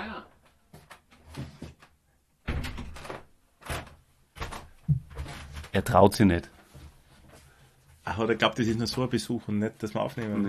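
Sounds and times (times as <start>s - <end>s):
door opening with clunks and rattling: 2.5s - 5.6s
speech: 5.8s - 6.6s, 8.2s - 10.4s.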